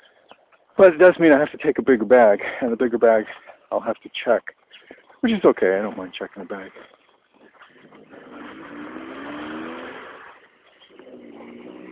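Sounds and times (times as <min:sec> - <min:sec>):
speech: 0:00.8 - 0:07.0
small smart car driving past: 0:07.8 - 0:11.9.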